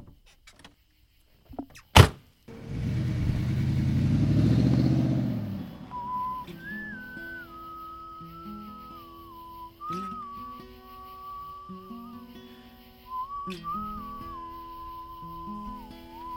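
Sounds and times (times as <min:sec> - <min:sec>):
sharp thud: 0:02.0 - 0:02.2
road traffic noise at dusk in the Hudson Valley: 0:02.0 - 0:08.2
vehicle engine rumble passing: 0:02.5 - 0:06.5
thin wavering high whistle: 0:04.7 - 0:16.3.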